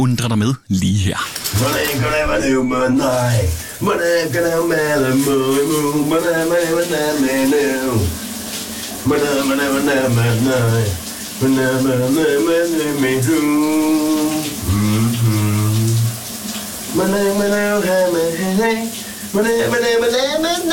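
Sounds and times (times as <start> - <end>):
speech: 0.0 - 8.2, 9.0 - 15.5, 17.0 - 20.7
man singing a Danish hit song in a shower: 1.1 - 20.7.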